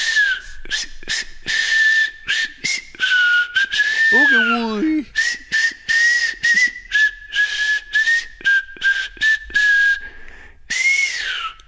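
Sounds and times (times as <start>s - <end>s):
person whistling a bright melody: 0.0s - 11.6s.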